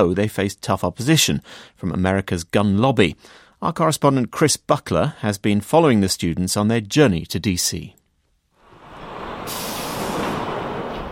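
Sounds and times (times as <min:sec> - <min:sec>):
speech: 0:00.0 - 0:08.0
low rumble of bus engine: 0:08.7 - 0:11.1
bus air brakes hissing in snowy Washington: 0:08.8 - 0:11.1.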